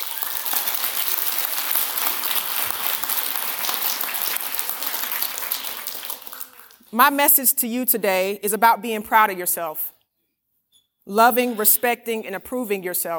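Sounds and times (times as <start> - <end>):
graduating class applauding: 0.0 - 6.9
speech: 6.9 - 9.9, 11.1 - 13.1.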